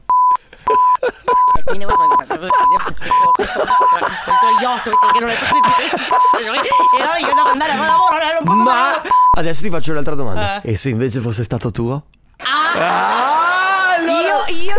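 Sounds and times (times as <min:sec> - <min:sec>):
short high censor bleeps: 0:00.1 - 0:07.6, 0:08.5 - 0:09.4
laughter: 0:00.4 - 0:09.2, 0:12.4 - 0:14.7
speech: 0:01.0 - 0:12.2.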